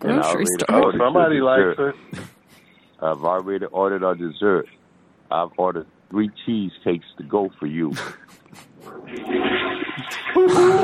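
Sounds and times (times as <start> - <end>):
speech: 0.0 - 2.3, 3.0 - 10.8
toilet flushing with gurgling refill and faint whistling tone: 9.0 - 10.8.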